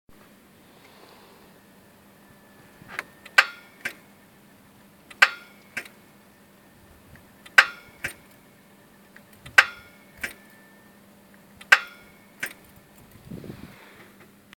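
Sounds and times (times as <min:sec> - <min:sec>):
engine starter click: 0:02.6 - 0:04.1, 0:05.1 - 0:06.0, 0:07.1 - 0:08.4, 0:09.1 - 0:10.8, 0:11.6 - 0:14.3.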